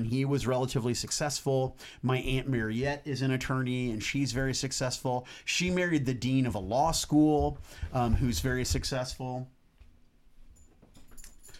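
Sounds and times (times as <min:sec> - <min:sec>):
speech: 0:00.0 - 0:09.6
dog collar tags jingling: 0:10.6 - 0:11.5.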